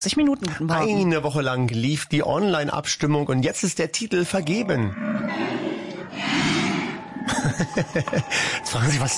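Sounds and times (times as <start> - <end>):
speech: 0.0 - 6.7, 7.3 - 9.1
bear roaring: 4.3 - 8.6
laughter: 6.9 - 9.1.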